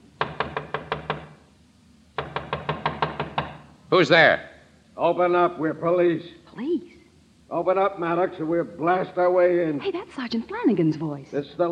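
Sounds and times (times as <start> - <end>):
sharp rapid knocking on a door: 0.0 - 1.5, 2.2 - 3.7
speech: 3.9 - 6.9, 7.5 - 11.7.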